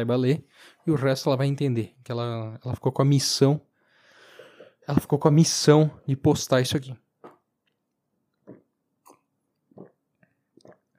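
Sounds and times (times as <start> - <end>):
speech: 0.0 - 3.7, 4.9 - 7.0
person swallowing: 7.2 - 7.6, 8.3 - 10.9
person chewing food with wet mouth noises: 7.2 - 10.9.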